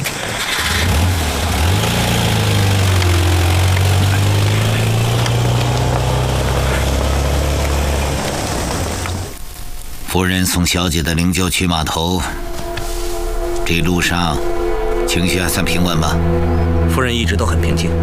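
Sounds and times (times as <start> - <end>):
car engine starting and driving off: 0.0 - 9.4
speech: 10.2 - 12.6, 13.7 - 18.0.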